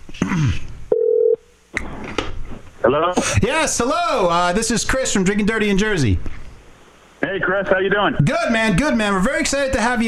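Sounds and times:
phone line ringback tone: 0.9s - 1.4s
speech: 2.8s - 6.4s, 7.3s - 10.0s.

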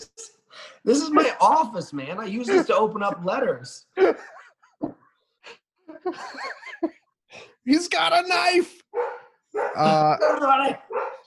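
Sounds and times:
speech: 0.8s - 5.0s, 7.7s - 11.0s
laughter: 4.0s - 7.2s
dogs barking at a delivery: 8.9s - 11.2s.

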